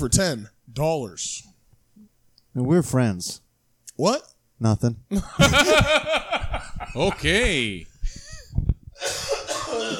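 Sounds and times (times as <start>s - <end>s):
speech: 0.0s - 1.5s, 2.6s - 3.4s, 4.0s - 7.9s
laughter: 5.2s - 7.4s
man with bronchitis coughing from a tickle in the throat: 9.0s - 9.9s.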